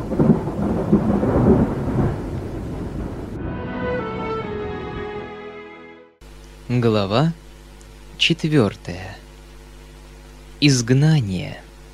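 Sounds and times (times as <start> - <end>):
distant rolling thunder: 0.0 - 3.7
quiet sustained musical tones: 3.3 - 6.2
speech: 6.7 - 7.4, 8.2 - 9.2, 10.6 - 11.6.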